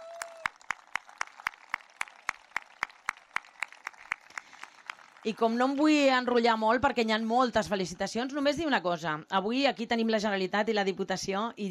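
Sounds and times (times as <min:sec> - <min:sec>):
audience clapping in unison: 0:00.0 - 0:06.6
speech: 0:05.2 - 0:11.6.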